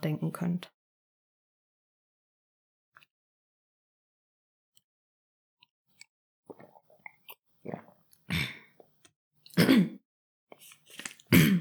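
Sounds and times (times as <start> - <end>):
speech: 0.0 - 0.8, 9.6 - 10.0
person clearing throat: 8.3 - 8.7, 9.6 - 10.0, 11.3 - 11.5.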